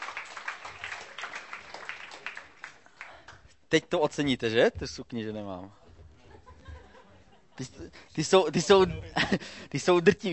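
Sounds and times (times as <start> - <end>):
crowd applauding to welcome a guest: 0.0 - 3.4
speech: 3.7 - 5.8, 7.6 - 10.3
laughter: 6.2 - 10.1.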